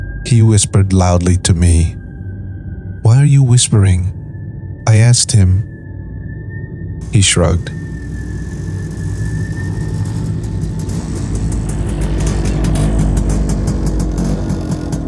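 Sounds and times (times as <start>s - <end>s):
speech: 0.2s - 2.0s, 3.1s - 4.2s, 4.9s - 5.8s, 7.0s - 7.8s
brief high whine: 7.0s - 14.9s
motorcycle engine rumbling along a road: 7.0s - 15.0s.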